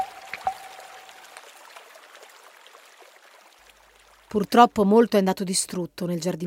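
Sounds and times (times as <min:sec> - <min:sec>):
water pouring and splashing onto a fire: 0:00.0 - 0:04.9
speech: 0:04.3 - 0:06.4.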